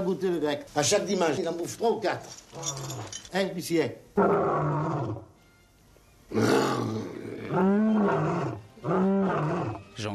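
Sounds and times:
speech: 0.1s - 5.3s, 6.3s - 10.1s
lion roaring in a circus: 4.2s - 5.2s, 6.3s - 9.8s.

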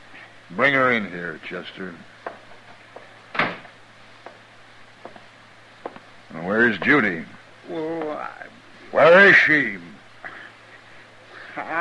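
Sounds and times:
low steady hum: 0.0s - 11.7s
speech: 0.5s - 2.1s, 6.4s - 9.9s, 11.6s - 11.7s
door swinging shut with a solid thump: 3.3s - 3.7s.

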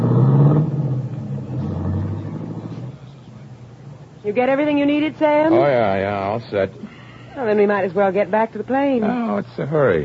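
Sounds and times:
limousine engine rumbling as it drives off toward the highway: 0.0s - 5.2s
speech: 4.4s - 10.0s.

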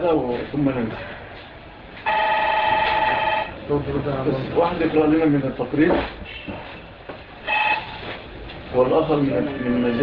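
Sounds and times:
speech: 0.0s - 1.2s, 3.7s - 6.7s, 8.7s - 10.0s
telephone ringing with steady electronic tone: 2.0s - 3.6s, 7.4s - 8.0s.

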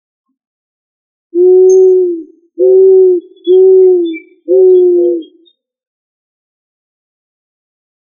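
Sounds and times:
pigeon Columbidae cooing: 1.4s - 5.5s.

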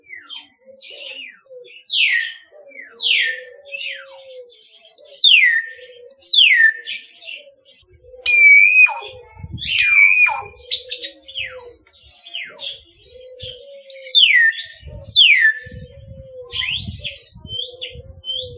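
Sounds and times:
common hill myna song of clear whistles: 0.0s - 7.4s, 8.2s - 11.6s, 12.2s - 15.8s.

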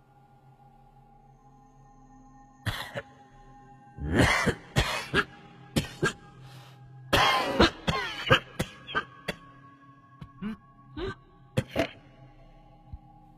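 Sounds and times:
rasping wet coughs from inside a room where a body is laid out: 4.1s - 6.3s, 7.1s - 9.6s, 10.2s - 12.0s.

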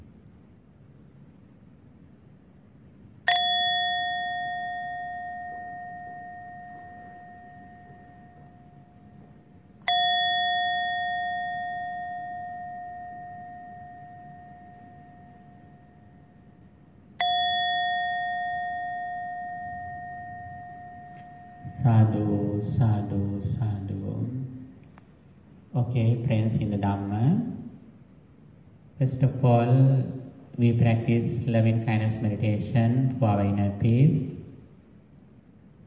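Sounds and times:
meditation bell ringing at the close of a Buddhist loving-kindness meditation: 3.2s - 24.8s
speech: 25.8s - 27.5s, 29.2s - 34.3s.

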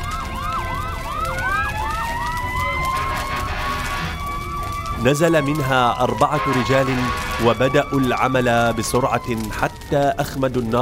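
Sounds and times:
fire engine siren as the truck arrives at a fire: 0.0s - 10.8s
speech: 5.0s - 10.8s.

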